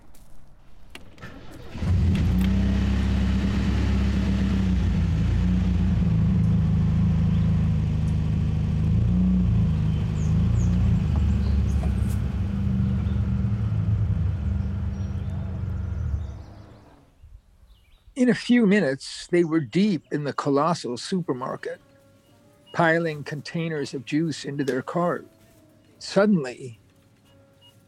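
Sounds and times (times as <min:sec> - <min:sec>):
truck engine starting: 0:00.8 - 0:17.1
speech: 0:18.2 - 0:21.9, 0:22.8 - 0:25.3, 0:26.0 - 0:26.8.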